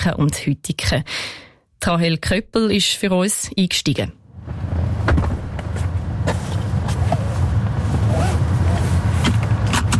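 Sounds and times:
speech: 0.0 - 4.6
steady low rumble of a vehicle interior: 4.3 - 9.9
car doors opening and shutting: 4.4 - 9.9
seatbelt clicking into its buckle: 9.2 - 9.9.

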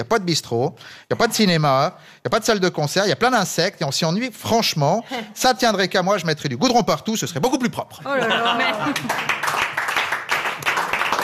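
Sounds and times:
speech: 0.0 - 9.7
laughter: 8.0 - 9.3
audience applause at a comedy stage show: 8.6 - 11.2.

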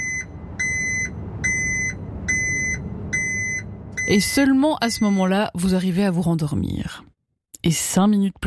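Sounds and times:
garbage truck low rumbling engine drone: 0.0 - 4.6
garbage truck reversing alarm beeping: 0.0 - 5.4
speech: 4.1 - 8.4.

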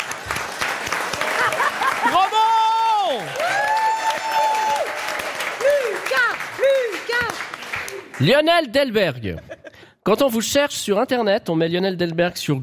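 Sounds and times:
crowd applauding: 0.0 - 8.5
laughter: 1.2 - 2.6, 9.2 - 9.9
speech: 8.2 - 12.6.

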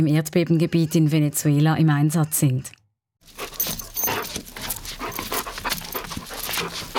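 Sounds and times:
speech: 0.0 - 3.4
faint metallic jingle: 3.3 - 6.8
Hovawart dog panting: 3.3 - 6.9.

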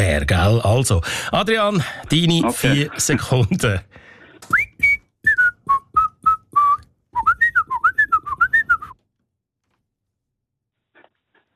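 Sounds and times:
speech: 0.0 - 4.6
laughter: 2.0 - 3.9
person whistling a late-1960s pop song melody: 4.5 - 9.0.

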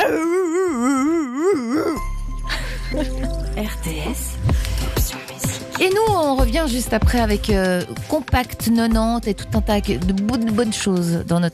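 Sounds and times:
person imitating a dog with a howl-like yowl: 0.0 - 2.0
music: 1.1 - 11.5
speech: 2.9 - 11.5.

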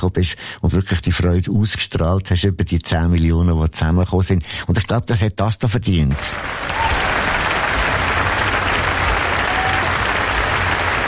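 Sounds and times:
speech: 0.0 - 6.9
sustained applause from a large audience: 6.2 - 11.0.

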